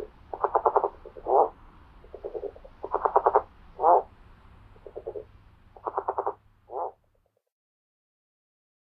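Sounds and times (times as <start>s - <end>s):
California red-legged frog calling in stuttering pulses in North America: 0.0s - 4.1s, 4.8s - 7.0s.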